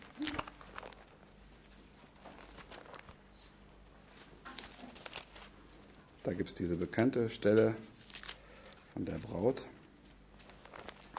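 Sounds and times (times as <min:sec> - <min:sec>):
thin Bible pages being flipped through: 0:00.0 - 0:03.3, 0:04.1 - 0:06.0, 0:08.0 - 0:11.1
speech: 0:06.2 - 0:08.0, 0:09.0 - 0:09.8.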